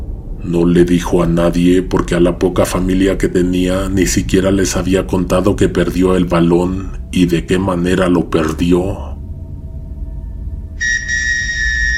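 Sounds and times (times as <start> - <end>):
low rumble: 0.0 - 11.9
speech: 0.4 - 9.1
shrill whistle blast: 10.8 - 11.9.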